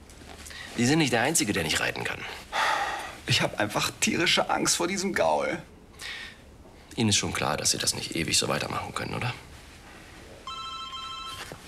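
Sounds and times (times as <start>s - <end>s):
soft rustle: 0.0s - 3.4s, 8.6s - 11.6s
speech: 0.8s - 2.5s, 3.2s - 6.2s, 7.0s - 9.5s
telephone ringing with an incoming call: 10.4s - 11.6s.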